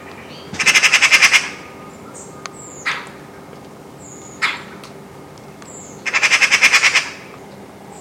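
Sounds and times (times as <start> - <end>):
Eurasian magpie Pica pica chattering: 0.6 - 1.6, 6.0 - 7.2.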